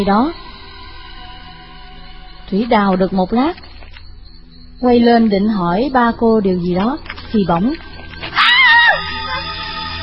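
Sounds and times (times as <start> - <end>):
speech: 0.0 - 0.4, 2.5 - 3.7, 4.8 - 7.9
woman screaming in fear: 8.4 - 9.6.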